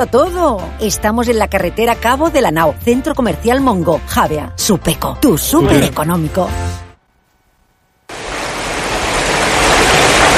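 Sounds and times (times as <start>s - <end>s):
speech: 0.0s - 6.8s
steady rain: 8.1s - 10.3s.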